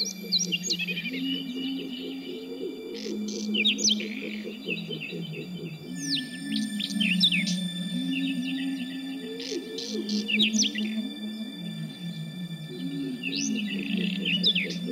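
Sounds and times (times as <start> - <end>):
Northern wheatear song with chirps and trills: 0.0 - 14.9.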